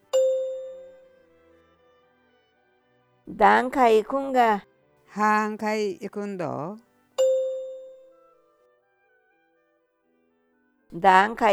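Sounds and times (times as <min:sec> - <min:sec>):
single clear struck chime ringing: 0:00.0 - 0:01.1, 0:07.2 - 0:08.1
speech: 0:03.3 - 0:06.8, 0:10.9 - 0:11.5.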